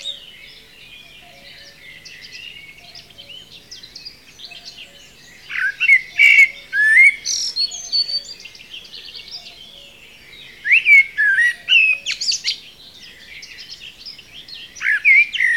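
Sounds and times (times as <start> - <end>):
Common blackbird singing, Turdus merula: 0.0 - 15.5.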